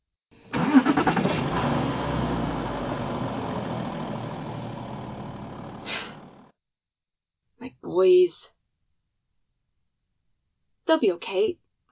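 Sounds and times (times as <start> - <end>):
car engine cranking and idling: 0.5 - 6.5
speech: 8.0 - 8.6, 10.9 - 11.6.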